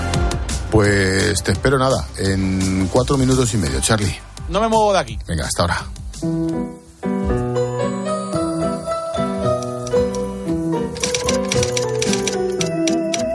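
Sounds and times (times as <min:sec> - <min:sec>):
steady melodic music bed: 0:00.0 - 0:13.3
speech: 0:00.7 - 0:06.8
typewriter keys clattering: 0:10.9 - 0:13.3.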